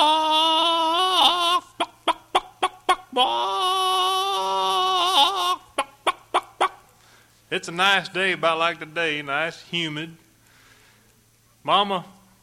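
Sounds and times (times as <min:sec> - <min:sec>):
rooster crowing: 0:00.0 - 0:06.9
sharp evenly spaced clucks: 0:01.7 - 0:03.2, 0:05.6 - 0:07.0
speech: 0:07.6 - 0:10.2, 0:11.6 - 0:12.2.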